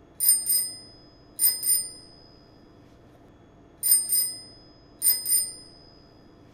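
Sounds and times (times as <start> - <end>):
bell fundamental tone: 0.2 - 2.6, 3.8 - 6.4.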